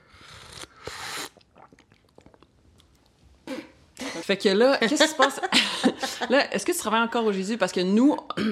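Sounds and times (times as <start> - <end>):
quick slurping sip from a drink: 0.0 - 3.8
soft mouth clicks: 0.3 - 3.7
person swallowing: 1.1 - 2.5
speech: 4.3 - 8.5.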